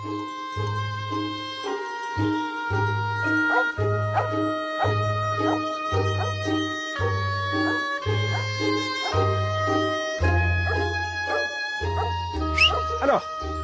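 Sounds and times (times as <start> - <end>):
sustained ringing tones: 0.0 - 12.6
female dog barking and yipping outdoors in alpine pastures in Savoie France: 3.2 - 9.8, 10.6 - 13.2.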